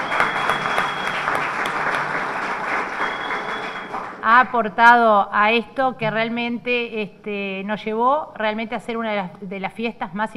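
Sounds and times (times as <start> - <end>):
audience applause: 0.0 - 4.2
speech: 4.3 - 10.3.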